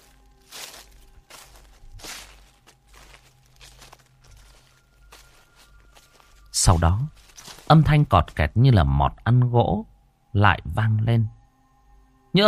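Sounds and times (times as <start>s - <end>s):
slow rustling footsteps walking on a roof: 0.0s - 8.4s
speech: 6.6s - 11.4s.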